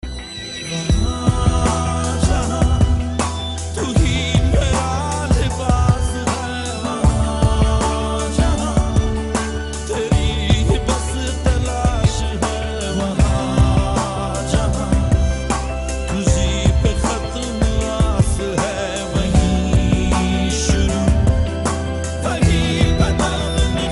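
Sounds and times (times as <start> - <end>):
Hindi romantic ringtone: 0.0 - 23.9.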